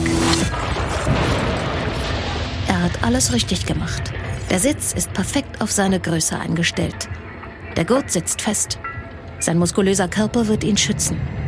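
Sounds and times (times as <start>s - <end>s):
car crash impact: 0.0s - 2.7s
speech: 2.8s - 11.4s.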